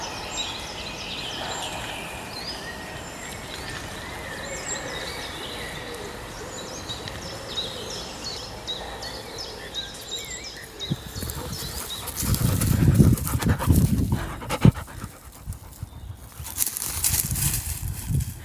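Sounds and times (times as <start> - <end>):
faint birdsong: 0.0 - 18.4
dogs panting heavily after running through bracken: 9.9 - 17.3
rustling underfoot: 10.9 - 18.4.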